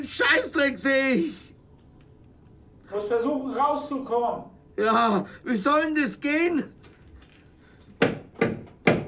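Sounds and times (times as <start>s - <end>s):
speech: 0.0s - 1.4s, 2.9s - 6.8s
heavy knocks on a door: 8.0s - 9.0s.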